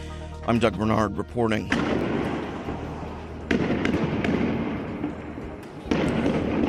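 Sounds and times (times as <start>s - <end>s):
speech: 0.5s - 2.3s
sharp bangs of police firing tear gas: 1.7s - 6.6s.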